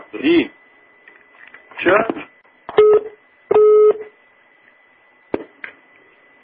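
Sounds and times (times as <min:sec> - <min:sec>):
speech: 0:00.2 - 0:00.6, 0:01.8 - 0:02.2
telephone busy tone beeps after a hang-up: 0:02.8 - 0:04.0.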